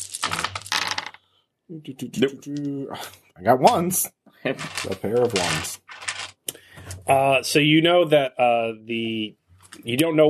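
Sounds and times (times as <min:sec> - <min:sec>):
dice clattering across a hard tabletop: 0:00.0 - 0:01.2, 0:04.6 - 0:06.5
speech: 0:01.7 - 0:05.9, 0:07.1 - 0:10.2.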